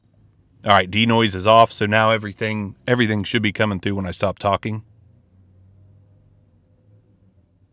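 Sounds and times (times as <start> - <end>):
faint ambient hiss: 0.0 - 7.7
big truck engine idling or passing: 0.6 - 4.8
speech: 0.6 - 4.9.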